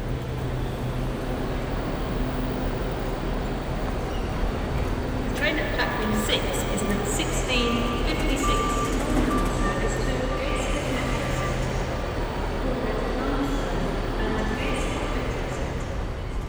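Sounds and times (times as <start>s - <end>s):
busy street traffic on the hill up to St. James's Park in Newcastle: 0.0s - 16.4s
truck reversing alarm beeping in short pulses: 5.6s - 13.1s.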